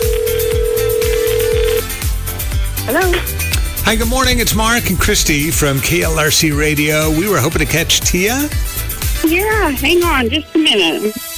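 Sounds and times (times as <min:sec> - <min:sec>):
telephone ringback tone on an outgoing call: 0:00.0 - 0:01.9
rhythmic music bed with thumping beats: 0:00.0 - 0:11.3
speech: 0:02.9 - 0:03.3, 0:03.9 - 0:11.3.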